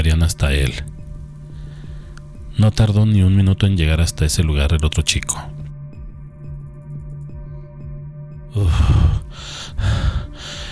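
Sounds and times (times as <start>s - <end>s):
speech: 0.0s - 0.9s, 2.6s - 5.6s, 8.5s - 10.2s
young man panting heavily after running through a crowd: 8.6s - 10.7s.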